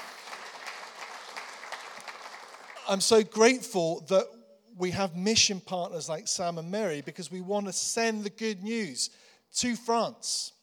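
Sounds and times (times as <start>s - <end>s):
church congregation applauding: 0.0s - 3.2s
speech: 2.9s - 10.6s.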